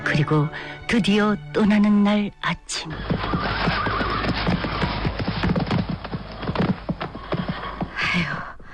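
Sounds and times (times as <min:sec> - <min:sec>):
speech: 0:00.2 - 0:03.8, 0:08.2 - 0:08.4
horse whinnying: 0:02.9 - 0:08.0
hooves of a carriage horse clip-clopping: 0:02.9 - 0:08.1.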